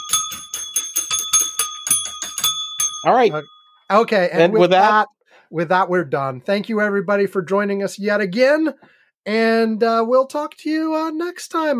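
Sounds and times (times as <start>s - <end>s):
small bell ringing rapidly: 0.0s - 4.6s
speech: 3.0s - 11.7s.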